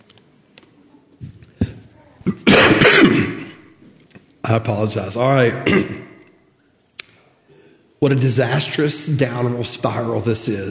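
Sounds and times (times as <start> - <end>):
person with a terrible cough coughing harshly: 2.2 - 3.6, 5.6 - 6.1
speech: 4.5 - 6.1, 8.0 - 10.6.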